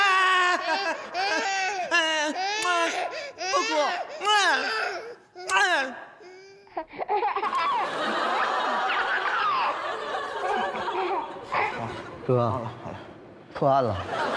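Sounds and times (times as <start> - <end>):
laughter: 0.0 - 3.8, 7.0 - 14.3
infant crying in high wavering wails: 0.0 - 7.8
speech: 12.3 - 13.0, 13.6 - 14.3.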